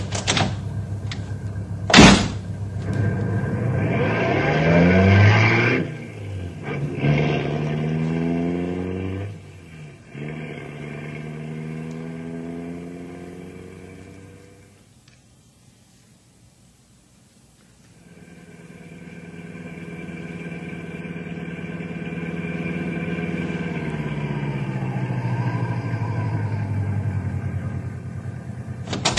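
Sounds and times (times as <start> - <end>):
car engine starting and revving through gear changes as the car pulls away: 0.0 - 14.8, 18.0 - 29.1
car door slamming shut: 1.9 - 2.5, 28.8 - 29.1.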